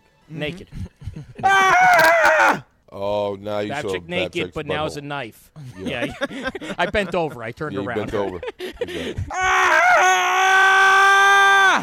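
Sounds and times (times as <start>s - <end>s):
speech: 0.3s - 10.7s
laughter: 0.6s - 2.2s, 3.7s - 5.0s, 5.6s - 9.8s
person performing a fake scream: 1.4s - 2.7s, 9.3s - 11.8s.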